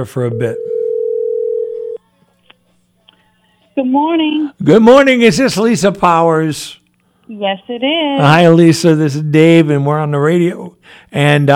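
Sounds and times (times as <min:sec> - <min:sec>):
speech: 0:00.0 - 0:00.7, 0:03.8 - 0:11.5
telephone dial tone while placing a call: 0:00.6 - 0:02.0.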